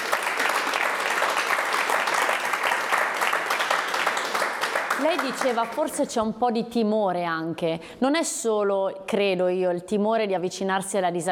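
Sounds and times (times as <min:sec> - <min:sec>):
sizable audience applauding: 0:00.0 - 0:06.0
speech: 0:05.0 - 0:11.2.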